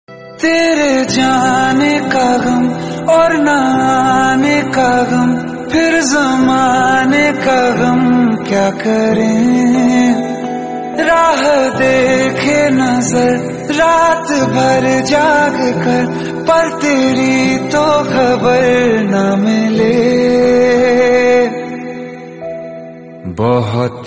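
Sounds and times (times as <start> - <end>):
sad Hindi ringtone: 0.1 - 23.9.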